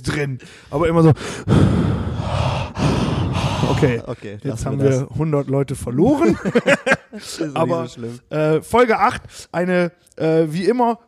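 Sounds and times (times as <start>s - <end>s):
speech: 0.0s - 2.1s, 3.6s - 11.0s
voice imitating loud heavy breathing into a microphone: 0.4s - 4.3s
laughter: 6.0s - 8.2s.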